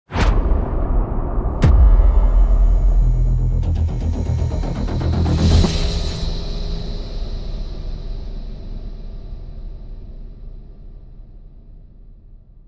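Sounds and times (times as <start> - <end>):
epic cinematic build swell riser: 0.1 - 8.0.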